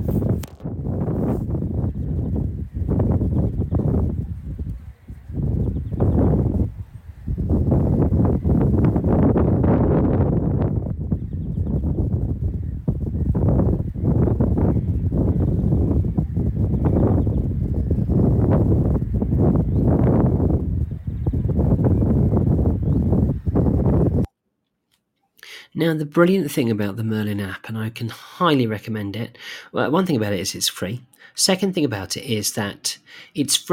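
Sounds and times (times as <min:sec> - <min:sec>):
strong wind buffeting the microphone: 0:00.0 - 0:24.3
speech: 0:25.9 - 0:33.7.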